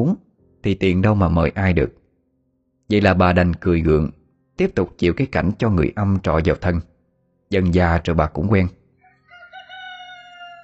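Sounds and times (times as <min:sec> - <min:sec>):
speech: 0:00.0 - 0:02.0, 0:02.9 - 0:06.9, 0:07.5 - 0:08.8
rooster crowing: 0:09.0 - 0:10.6.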